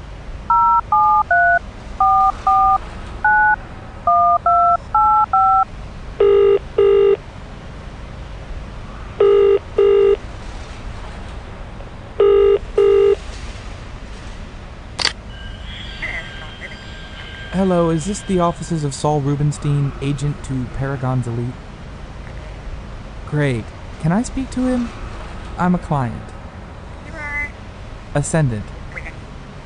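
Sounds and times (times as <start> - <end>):
touch-tone keypad beeps dialing a number on a payphone: 0.5 - 5.6
telephone ringing tones: 0.5 - 7.2, 9.2 - 10.2, 12.2 - 13.2
speech: 17.6 - 21.6, 23.3 - 25.0, 25.6 - 26.3, 28.2 - 28.7.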